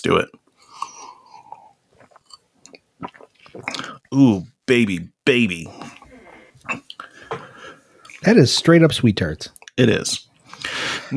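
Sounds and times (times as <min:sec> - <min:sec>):
speech: 0:00.0 - 0:00.4, 0:03.0 - 0:06.0, 0:08.2 - 0:11.1
person sipping beer: 0:00.6 - 0:04.1, 0:05.7 - 0:08.3
swallow: 0:00.7 - 0:04.1, 0:05.7 - 0:08.2.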